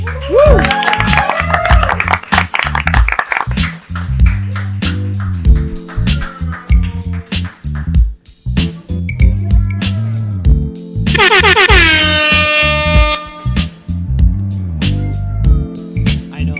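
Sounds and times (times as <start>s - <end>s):
pulsing bass-heavy music track: 0.0s - 16.5s
air horn blast: 11.1s - 13.7s.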